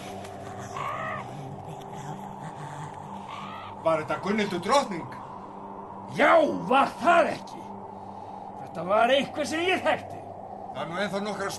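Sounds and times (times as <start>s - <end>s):
raven cawing noisily outside the window: 0.0s - 8.6s
speech: 3.8s - 5.2s, 6.1s - 7.6s, 8.8s - 10.1s, 10.8s - 11.5s.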